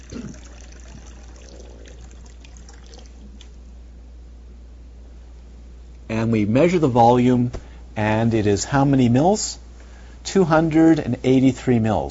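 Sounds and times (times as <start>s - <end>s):
liquid pouring from a teapot held by a robot arm into a cup: 0.0s - 3.6s
speech: 6.2s - 9.6s, 10.2s - 12.0s.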